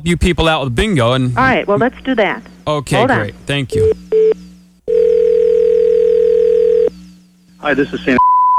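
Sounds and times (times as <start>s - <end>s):
speech: 0.0s - 4.4s, 7.6s - 8.5s
telephone ringback tone over a phone line during call transfer: 4.2s - 6.9s.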